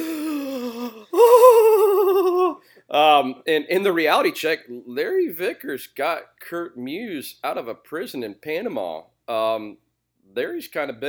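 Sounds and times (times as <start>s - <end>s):
person imitating a group of men gasping in surprise: 0.0s - 2.8s
speech: 3.0s - 11.0s.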